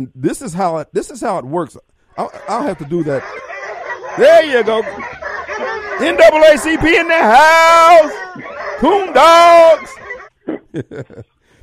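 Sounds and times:
speech: 0:00.0 - 0:03.5, 0:04.2 - 0:05.2, 0:06.0 - 0:11.6
person imitating a coon dog howling bay: 0:02.2 - 0:10.2
people laughing: 0:02.2 - 0:11.6.

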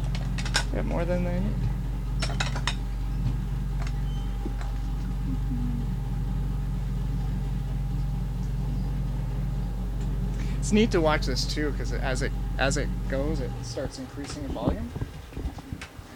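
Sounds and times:
steady low mechanical rumble: 0:00.0 - 0:16.1
speech: 0:00.8 - 0:01.8, 0:10.7 - 0:15.0
dirty dishes clattering into a bin: 0:02.2 - 0:02.8.

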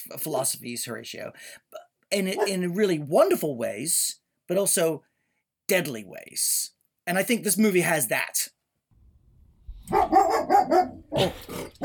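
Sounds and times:
speech: 0:00.0 - 0:05.1, 0:05.7 - 0:08.6, 0:09.9 - 0:11.8
dog barking from inside the ceiling: 0:02.4 - 0:02.6, 0:09.9 - 0:11.8.

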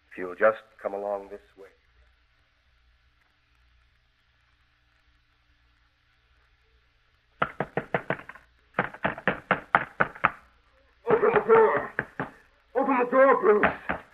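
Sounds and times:
speech: 0:00.2 - 0:01.8, 0:13.1 - 0:13.8
fist pounding on a door: 0:07.4 - 0:10.4, 0:11.1 - 0:12.4, 0:13.6 - 0:14.1
man calling out in a raised voice: 0:11.0 - 0:12.2, 0:12.8 - 0:14.1.

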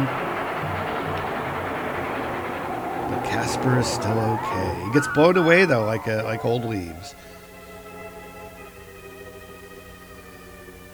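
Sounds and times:
freight train wheels clattering on rails: 0:00.0 - 0:07.1
freight train rumbling past: 0:00.0 - 0:07.3
speech: 0:03.3 - 0:07.4.

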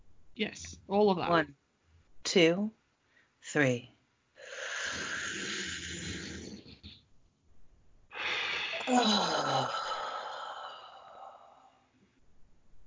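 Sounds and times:
speech: 0:00.4 - 0:01.6, 0:02.3 - 0:02.8, 0:03.4 - 0:04.6, 0:08.9 - 0:09.8
deep breath in and out during a guided breathing exercise: 0:04.4 - 0:06.8, 0:08.1 - 0:12.0.

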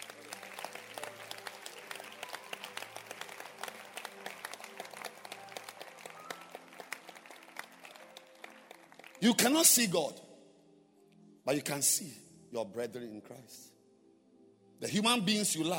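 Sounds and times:
audience clapping hands: 0:00.0 - 0:10.0
speech: 0:09.2 - 0:10.2, 0:11.5 - 0:13.7, 0:14.8 - 0:15.7.

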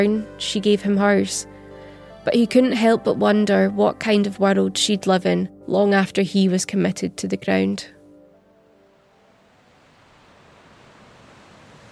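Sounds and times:
speech: 0:00.0 - 0:01.6, 0:02.2 - 0:08.0
gentle waves breaking on a sandy beach: 0:09.1 - 0:11.8.

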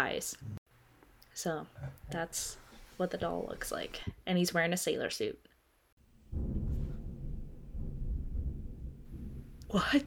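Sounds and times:
speech: 0:00.0 - 0:00.6, 0:01.4 - 0:05.5, 0:09.7 - 0:10.0
deep heavy thunder rumbling: 0:06.0 - 0:10.0.

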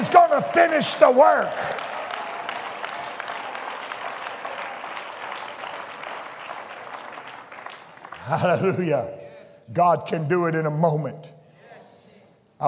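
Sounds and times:
applause from a large group: 0:00.0 - 0:08.8
speech: 0:00.4 - 0:01.9, 0:08.3 - 0:11.4.

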